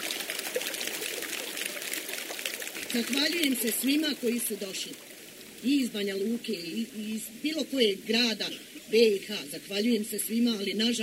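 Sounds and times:
spring water pouring from a spring on a gentle mountain near Kruščica: 0.0 - 5.8
speech: 2.9 - 11.0.

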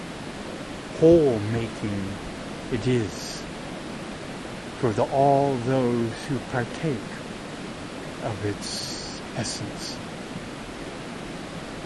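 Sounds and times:
steady continuous rush of flowing water: 0.0 - 11.8
speech: 1.0 - 3.4, 4.8 - 7.2, 8.2 - 10.0.

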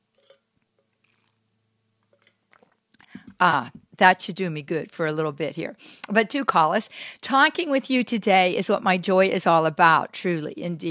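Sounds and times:
person sipping water close to the microphone: 0.1 - 0.4, 1.0 - 1.4, 2.1 - 3.4
speech: 3.4 - 10.8.

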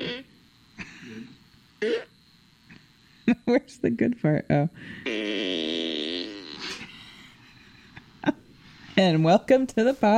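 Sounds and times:
loud buzzy fart: 0.0 - 0.3, 1.0 - 2.1, 5.0 - 6.9
speech: 3.5 - 5.8, 9.0 - 10.1
quiet rustling: 7.3 - 10.1.

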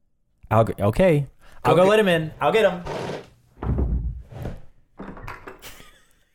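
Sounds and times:
speech: 0.5 - 2.9
bump: 2.8 - 4.7
heavy thud of a man tripping: 2.9 - 4.7.

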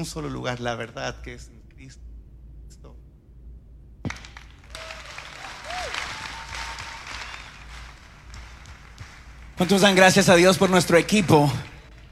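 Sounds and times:
speech: 0.0 - 2.1, 9.6 - 11.7
congregation applauding: 4.1 - 12.0
person whooping: 4.7 - 7.6.

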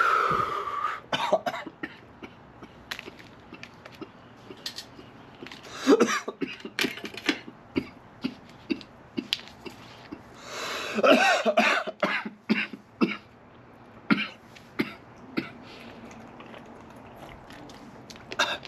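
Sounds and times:
deep inhale: 0.0 - 1.1, 10.4 - 11.0
person coughing repeatedly after a deep inhale: 1.1 - 2.8, 5.8 - 9.8, 10.9 - 13.3, 14.1 - 15.6.

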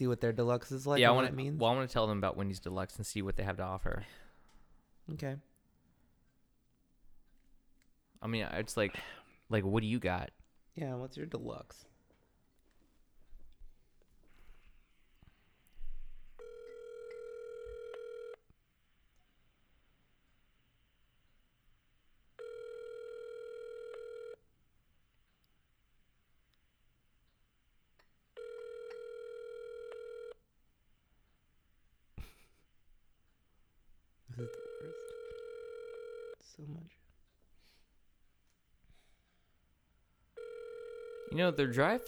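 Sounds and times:
speech: 0.0 - 4.3, 5.1 - 5.5, 8.2 - 11.9, 41.4 - 42.0
phone line ringback tones on a call: 16.4 - 18.4, 22.4 - 24.4, 28.4 - 30.4, 34.4 - 36.4, 40.4 - 42.0.

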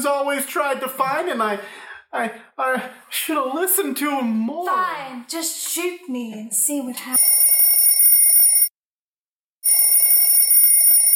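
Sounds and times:
speech: 0.0 - 7.4
telephone with buzzy bell ringing: 7.1 - 8.8, 9.6 - 11.1.

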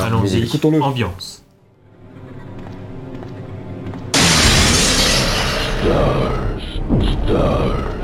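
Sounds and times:
speech: 0.1 - 1.4, 7.3 - 7.9
creature crashing through a window in a video game: 4.2 - 6.3
low rumbling video game ambience: 4.2 - 6.9.

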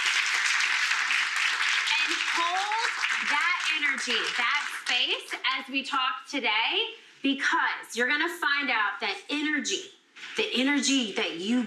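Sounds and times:
people cheering: 0.0 - 5.1
audience clapping in a room during a talk: 0.0 - 5.4
speech: 2.1 - 11.6.

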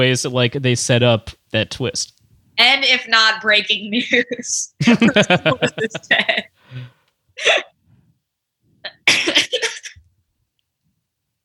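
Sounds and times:
speech: 0.0 - 7.7
laughter: 4.8 - 6.5
voiced vocal sounds: 5.0 - 6.2
person coughing in short harsh bursts: 7.4 - 7.7, 8.9 - 10.0.

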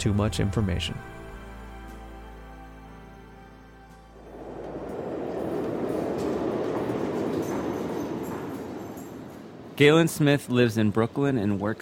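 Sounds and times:
speech: 0.0 - 1.2, 9.8 - 11.8
New York City subway train rumbling along the rails: 4.0 - 10.4.

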